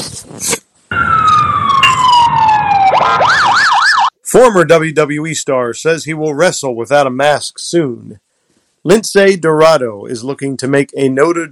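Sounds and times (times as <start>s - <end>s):
emergency siren wailing and yelping: 0.9s - 4.2s
speech: 4.4s - 8.2s, 8.8s - 11.4s.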